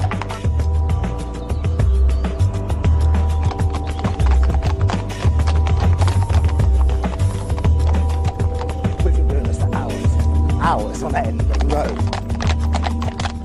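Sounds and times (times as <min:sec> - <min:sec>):
horse hooves clip-clopping pulling a cart: 0:00.0 - 0:13.4
cart wheels rumbling on a hard road: 0:02.9 - 0:13.4.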